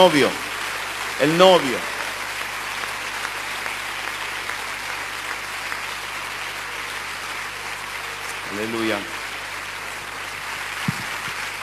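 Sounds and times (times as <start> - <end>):
speech: 0.0 - 0.5, 1.2 - 1.9, 8.5 - 9.2
church audience applauding: 0.0 - 11.6.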